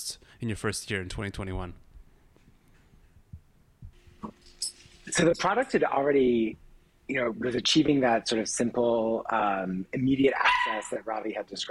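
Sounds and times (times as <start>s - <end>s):
speech: 0.0s - 1.9s, 5.1s - 11.6s
puppy yapping: 10.4s - 10.9s.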